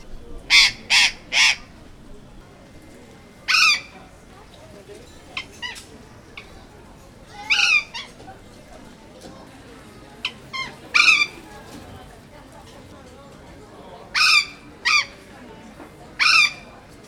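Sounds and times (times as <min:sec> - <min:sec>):
Cyanoliseus patagonus burrowing parrot flock calling: 0:00.5 - 0:01.9, 0:03.5 - 0:04.0, 0:07.3 - 0:08.3, 0:10.2 - 0:11.8, 0:16.2 - 0:16.6.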